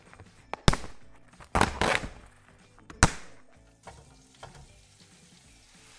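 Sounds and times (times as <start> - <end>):
oil spattering pops in a wok: 0.0 - 4.6
chicken frying in oil in a wok: 3.4 - 5.9.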